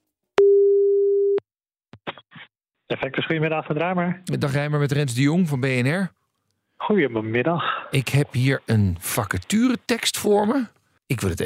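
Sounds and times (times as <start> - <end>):
telephone ringing tone while placing a call: 0.4 - 1.4
speech: 2.9 - 6.2, 6.8 - 11.4.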